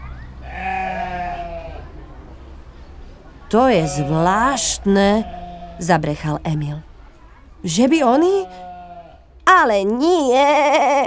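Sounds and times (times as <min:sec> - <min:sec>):
low steady outdoor rumble: 0:00.0 - 0:11.0
sheep or goat bleating: 0:00.4 - 0:02.0, 0:03.5 - 0:07.0, 0:07.6 - 0:09.4
speech: 0:03.5 - 0:06.9, 0:07.6 - 0:08.6, 0:09.6 - 0:11.0.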